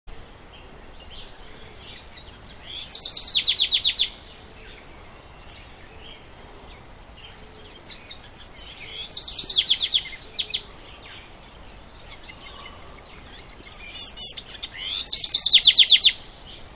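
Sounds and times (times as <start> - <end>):
House Wren calling: 0.1 - 16.7.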